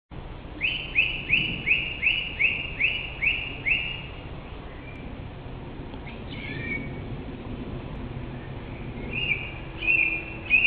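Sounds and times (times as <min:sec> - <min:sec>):
song thrush whistled song in Germany: 0:00.6 - 0:05.1, 0:06.0 - 0:07.0, 0:08.3 - 0:10.6.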